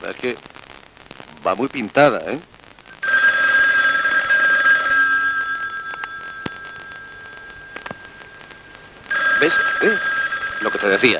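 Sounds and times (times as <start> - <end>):
speech: 0.0 - 0.6, 1.4 - 2.5, 9.4 - 11.1
telephone ringing with a bright electronic trill: 3.0 - 11.1.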